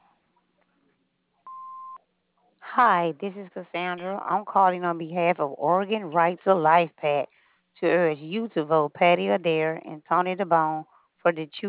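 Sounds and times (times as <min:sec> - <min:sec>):
answering machine beep: 0:01.5 - 0:02.0
speech: 0:02.8 - 0:11.6.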